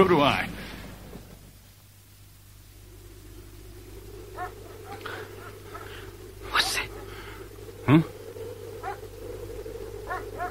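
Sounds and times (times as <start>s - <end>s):
speech: 0.0s - 0.6s, 7.9s - 8.1s
low hum: 0.0s - 10.5s
police dogs barking: 4.4s - 7.2s, 8.8s - 9.1s, 10.1s - 10.5s.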